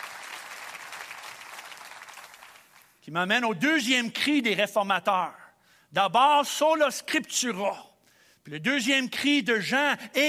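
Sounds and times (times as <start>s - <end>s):
audience applause: 0.0s - 2.9s
speech: 3.1s - 10.2s.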